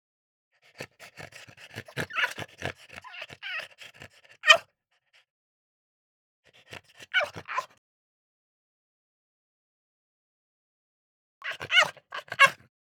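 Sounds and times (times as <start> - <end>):
French Bulldog yelping: 2.0 - 2.4, 3.0 - 3.7, 4.4 - 4.6, 7.1 - 7.7, 11.4 - 12.6.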